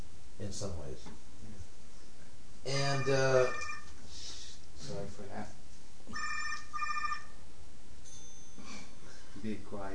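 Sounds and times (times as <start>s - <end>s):
quiet hum: 0.0s - 9.9s
speech: 0.4s - 1.7s, 2.6s - 3.7s, 4.8s - 6.4s, 9.4s - 9.9s
cell phone ringing with bright trilling electronic tone: 2.7s - 4.0s, 6.1s - 7.4s.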